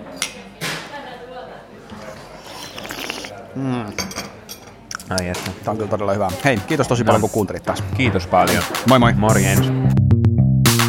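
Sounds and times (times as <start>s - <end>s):
faint voices: 0.0s - 8.8s
glasses clinking together in a toast: 2.4s - 3.3s
speech: 3.6s - 4.0s, 5.1s - 10.0s.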